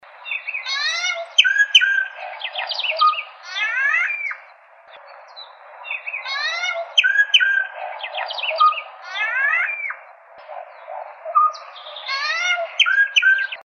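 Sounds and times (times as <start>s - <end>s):
boyero negro calling: 0.2s - 13.6s.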